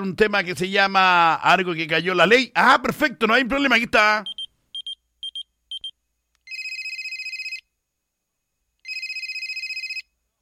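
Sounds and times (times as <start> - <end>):
speech: 0.0 - 4.3
telephone electronic beeps: 4.3 - 6.0
telephone long trilling rings: 6.5 - 7.7, 8.8 - 10.1.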